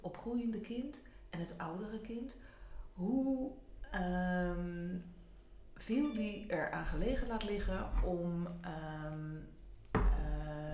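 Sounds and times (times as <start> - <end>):
speech: 0.0 - 5.2, 5.8 - 9.6
phone beeping with a steady electronic tone: 5.9 - 6.5.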